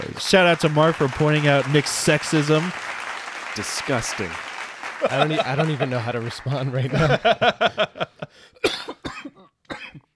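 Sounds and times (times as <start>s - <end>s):
speech: 0.3s - 2.9s, 3.6s - 8.9s
laughter: 4.9s - 8.4s
harsh phlegmy coughs: 8.6s - 10.1s.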